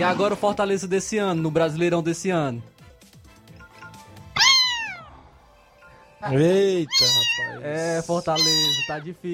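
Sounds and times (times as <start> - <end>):
speech: 0.0 - 2.7, 6.2 - 9.3
high-pitched kitten meow: 4.4 - 5.2, 6.8 - 7.7, 8.3 - 9.1.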